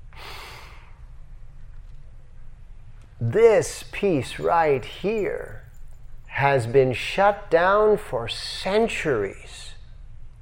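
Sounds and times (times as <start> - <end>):
quiet low rumble: 0.0 - 8.4
sharp gasp: 0.2 - 1.0
speech: 3.2 - 5.6, 6.4 - 9.7.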